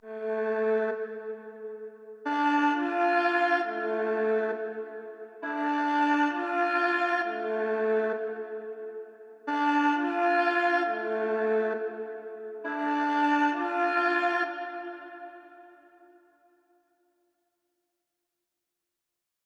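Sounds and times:
133 BPM A minor drill violin melody stem: 2.3 - 8.4, 9.5 - 15.4.

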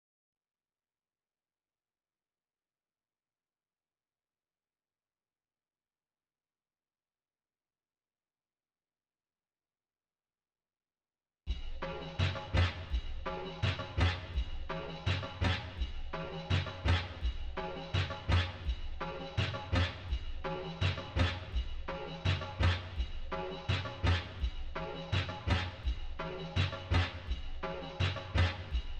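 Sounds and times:
percussion loop in F minor: 11.5 - 28.9.

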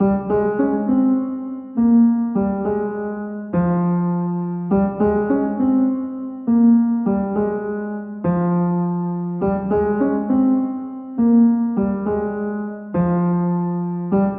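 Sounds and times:
piano melody loop in C minor: 0.0 - 14.3.

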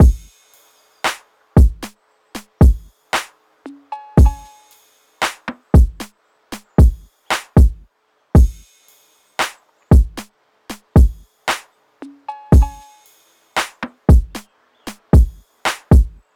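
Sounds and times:
drum loop: 0.0 - 0.4, 1.1 - 3.3, 4.2 - 4.5, 5.2 - 7.8, 8.4 - 8.6, 9.4 - 11.6, 12.5 - 12.8, 13.6 - 16.2.

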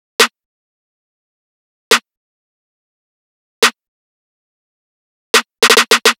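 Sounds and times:
riddim snare drum loop: 5.4 - 6.1.

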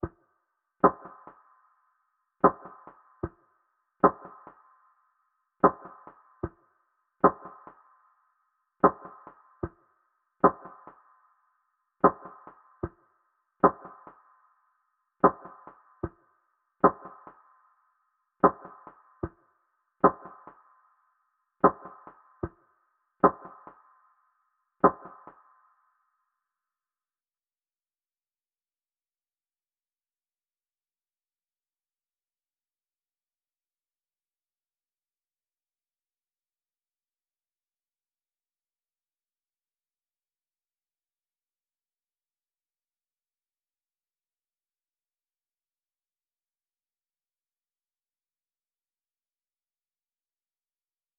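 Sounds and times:
percussion loop in G minor at 75 BPM: 0.8 - 1.4, 2.4 - 3.4, 4.0 - 4.6, 5.6 - 6.6, 7.2 - 7.8, 8.8 - 9.8, 10.4 - 11.0, 12.0 - 13.0, 13.6 - 14.2, 15.2 - 16.2, 16.8 - 17.4, 18.4 - 19.4, 20.0 - 20.6, 21.6 - 22.6, 23.2 - 23.8, 24.8 - 25.4.

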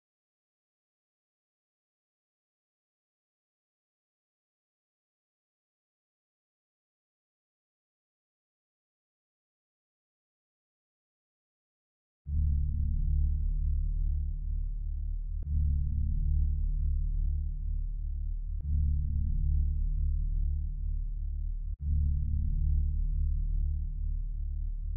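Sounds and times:
D minor bass loop at 151 BPM: 12.4 - 24.9.

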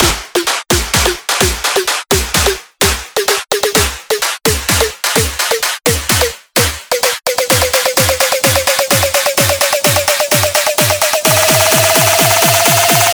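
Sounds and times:
house drum buildup loop at 128 BPM: 0.0 - 13.1.

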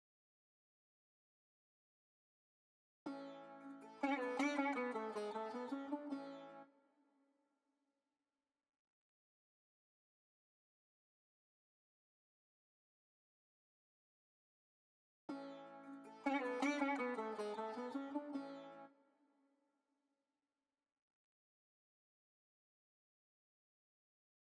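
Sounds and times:
F# minor string melody loop: 3.1 - 6.7, 15.3 - 19.0.

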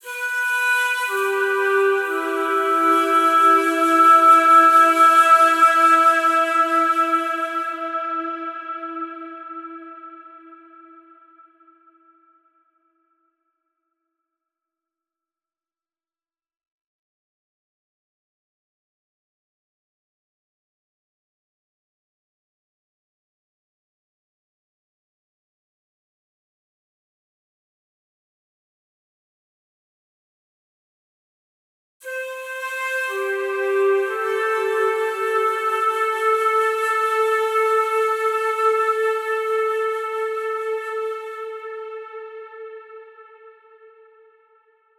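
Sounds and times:
flute loop in A minor at 60 BPM: 0.0 - 11.6, 32.0 - 44.4.

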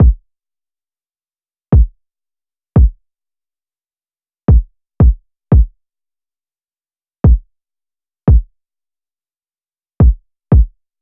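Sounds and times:
kick drum loop: 0.0 - 0.2, 2.8 - 3.0, 4.5 - 5.7, 8.3 - 8.5, 10.0 - 10.8.

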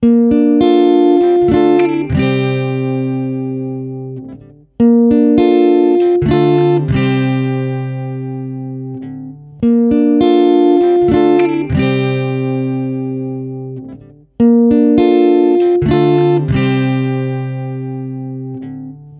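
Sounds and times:
guitar at 100 BPM in A sharp major: 0.0 - 19.1.

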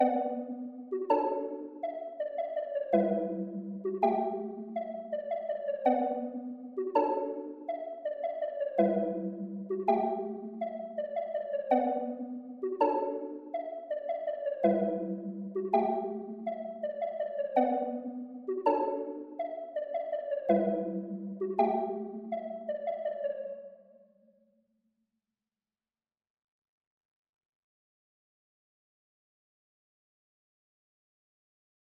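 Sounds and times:
keys loop in B minor: 0.0 - 23.3.

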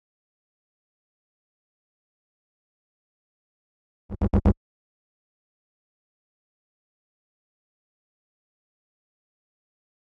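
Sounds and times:
125 BPM A-sharp minor bass fill: 4.1 - 4.6.

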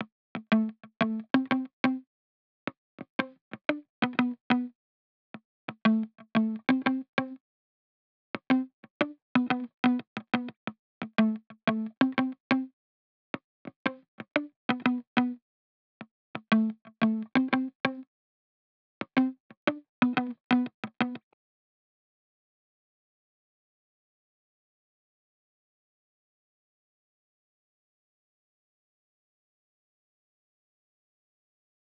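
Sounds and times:
muted guitar loop in A minor: 0.4 - 2.0, 3.2 - 4.7, 5.7 - 7.4, 8.4 - 12.7, 13.8 - 15.4, 16.4 - 18.0, 19.1 - 21.2.

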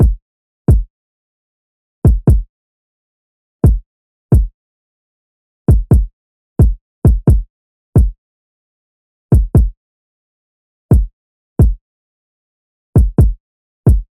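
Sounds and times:
kick drum loop stem at 132 BPM: 0.0 - 0.9, 2.1 - 2.5, 3.6 - 4.5, 5.7 - 8.2, 9.3 - 9.7, 10.9 - 11.8, 13.0 - 14.1.

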